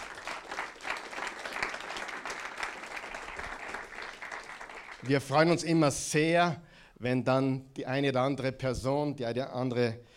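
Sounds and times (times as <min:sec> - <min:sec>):
audience applause: 0:00.0 - 0:05.3
speech: 0:05.0 - 0:10.1.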